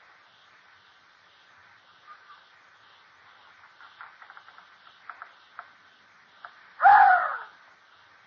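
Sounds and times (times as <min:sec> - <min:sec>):
faint clicks and taps: 0:03.4 - 0:06.6.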